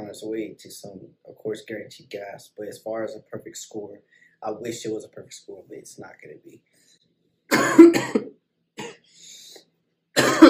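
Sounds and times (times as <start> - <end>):
speech: 0.1 - 6.9, 7.5 - 8.4
harsh coughing after smoking: 7.5 - 9.3, 10.2 - 10.4
wheezy breath: 9.0 - 9.7.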